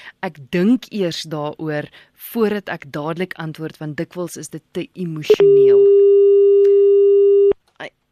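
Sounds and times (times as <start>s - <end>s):
speech: 0.2s - 6.0s
telephone busy tone after a dropped phone call: 5.3s - 7.6s.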